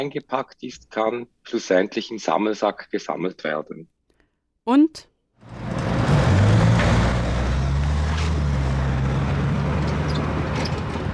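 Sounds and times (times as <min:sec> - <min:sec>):
speech: 0:00.0 - 0:04.0, 0:04.7 - 0:05.6
dense early-morning traffic roar at a city square in Bern: 0:05.4 - 0:11.1
low engine hums from passing vehicles: 0:05.4 - 0:11.1.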